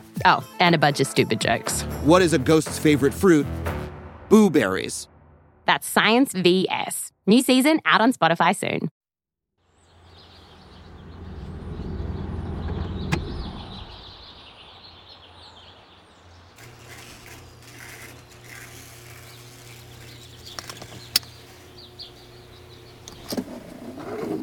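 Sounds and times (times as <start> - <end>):
speech: 0.2 - 5.1, 5.7 - 9.0
car engine rumbling as the car pulls into a garage: 10.1 - 14.3, 16.7 - 24.4.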